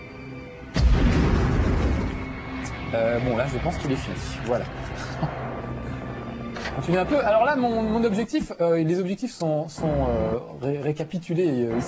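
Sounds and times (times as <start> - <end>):
grenade explosion in a video game: 0.8 - 2.6
speech: 2.9 - 5.5, 6.8 - 11.8.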